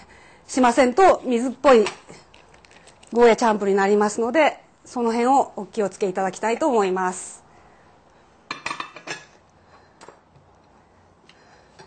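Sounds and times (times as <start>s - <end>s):
speech: 0.5s - 2.2s, 3.1s - 7.4s
plate being handled while draining tofu for goya champuru: 8.5s - 9.4s.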